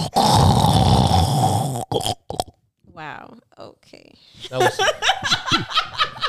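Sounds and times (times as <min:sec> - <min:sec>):
brief breathy sounds: 0:00.0 - 0:02.6
person imitating snoring with a long rattling snort: 0:00.0 - 0:02.6
speech: 0:03.3 - 0:05.4
laughter: 0:04.4 - 0:06.2.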